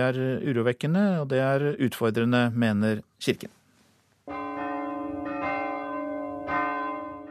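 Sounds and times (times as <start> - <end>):
speech: 0.0 - 3.6
church bells ringing: 4.3 - 7.2.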